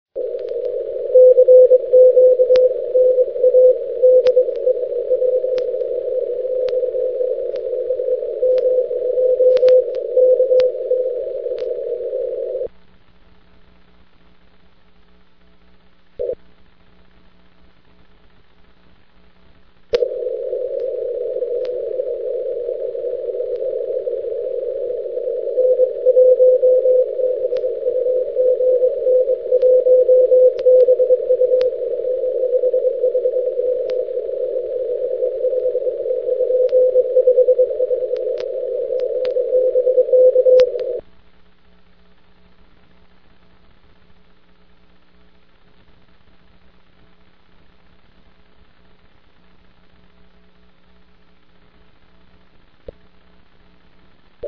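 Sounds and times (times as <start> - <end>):
6 meter ham radio contact: 0.2 - 12.7, 19.9 - 41.0.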